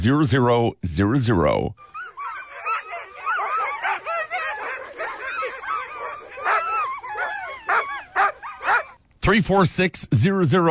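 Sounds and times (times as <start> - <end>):
speech: 0.0 - 1.9, 9.3 - 10.6
dog barking yipping and whimpering: 1.8 - 9.0.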